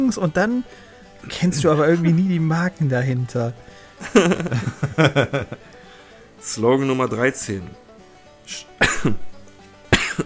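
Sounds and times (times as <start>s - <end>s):
speech: 0.0s - 5.7s, 6.4s - 7.8s, 8.5s - 9.3s
faint breath: 0.7s - 1.1s, 3.6s - 4.0s, 5.7s - 6.4s
laughter: 1.3s - 2.3s, 4.0s - 5.9s
person coughing: 8.8s - 9.3s, 9.9s - 10.2s.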